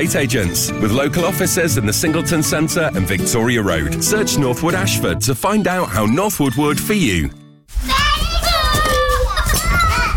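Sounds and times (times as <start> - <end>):
speech: 0.0 - 7.9
toddlers babbling and squealing while playing: 7.9 - 10.1.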